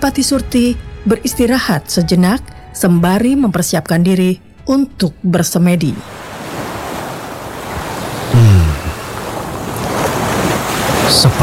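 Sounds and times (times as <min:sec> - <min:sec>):
speech: 0:00.0 - 0:06.3, 0:11.1 - 0:11.4
ocean waves washing against a sea cave: 0:06.0 - 0:11.4.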